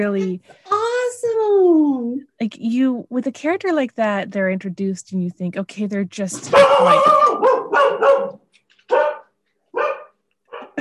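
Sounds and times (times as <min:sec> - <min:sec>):
speech: 0:00.0 - 0:00.8, 0:01.5 - 0:07.6
big dog barking: 0:06.5 - 0:10.8.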